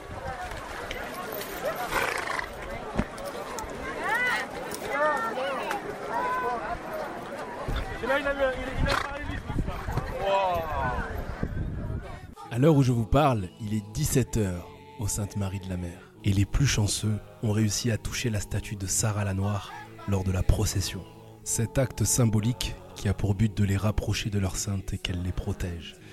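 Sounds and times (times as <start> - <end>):
noisy outdoor crowd voices: 0.0 - 26.1
horses snorting: 1.6 - 2.8, 8.8 - 9.2
speech: 8.1 - 9.0, 12.6 - 26.0.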